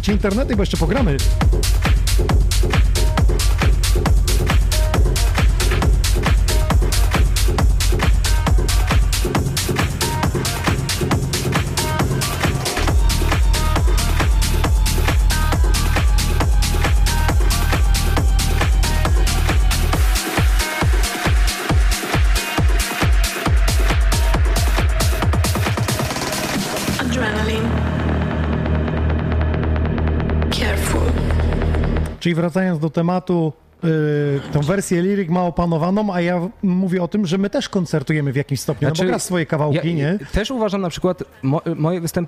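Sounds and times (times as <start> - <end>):
speech: 0.0 - 3.2, 32.2 - 42.2
loud driving techno with four-on-the-floor kick, pulsing bass and synths: 0.0 - 32.2.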